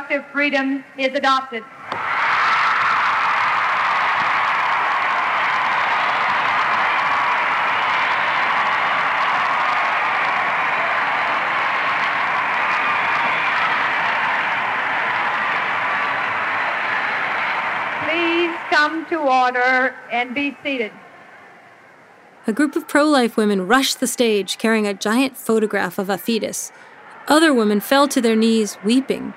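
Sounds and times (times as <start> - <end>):
speech: 0.1 - 2.0, 19.2 - 21.0, 22.5 - 29.3
large convention crowd cheering and applauding: 1.8 - 19.8, 22.8 - 29.3.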